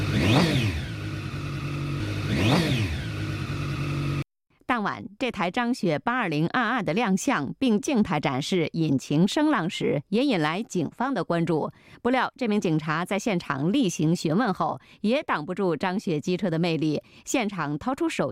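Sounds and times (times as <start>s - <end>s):
stationary motorcycle engine revving: 0.0s - 4.3s
people talking: 4.7s - 18.2s.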